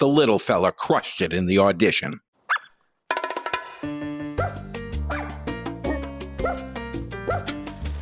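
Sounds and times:
speech: 0.0s - 2.2s
music: 3.2s - 8.0s
small English toy spaniel barking: 4.4s - 7.6s.

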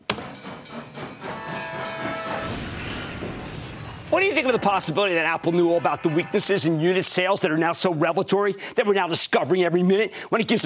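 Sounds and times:
fast freight train rushing past: 0.1s - 7.6s
metallic rattling of a freight train: 2.0s - 5.4s
speech: 4.1s - 10.6s.

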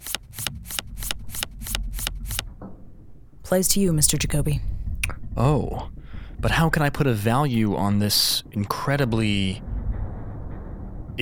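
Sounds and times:
deck of playing cards being shuffled for a game of Texas Hold'em: 0.0s - 2.4s
speech: 3.5s - 4.7s, 5.4s - 9.7s.

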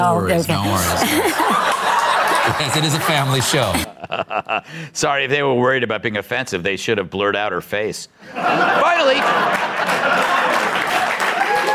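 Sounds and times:
speech: 0.0s - 10.7s
laughter: 0.6s - 4.8s, 8.2s - 11.7s
audience applause at a family show: 1.6s - 3.9s, 9.1s - 11.7s.

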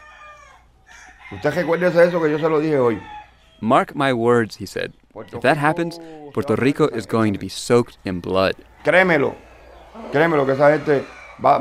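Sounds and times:
rooster crowing: 0.0s - 3.6s, 8.2s - 11.6s
speech: 1.3s - 9.4s, 10.0s - 11.6s.

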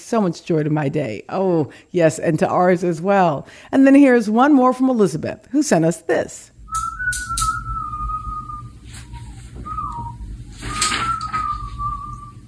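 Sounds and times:
speech: 0.1s - 6.5s
teenage boy whistling while cleaning his desk: 6.7s - 12.4s
soft knocks and rustles from handling objects on a desk: 9.0s - 12.0s.

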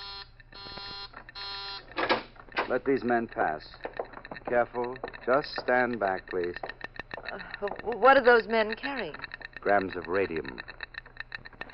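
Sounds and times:
harsh electric warning buzzer blaring: 0.0s - 2.2s
speech: 2.7s - 6.7s, 7.3s - 10.7s.

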